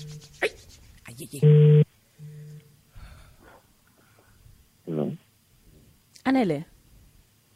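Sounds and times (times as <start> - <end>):
speech: 1.2 - 1.7, 6.4 - 6.7
telephone busy tone after call cut off: 1.4 - 2.6.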